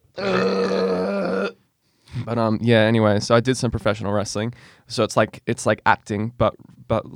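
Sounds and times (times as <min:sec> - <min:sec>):
loud deep throaty burp: 0:00.1 - 0:01.6
speech: 0:02.3 - 0:07.1.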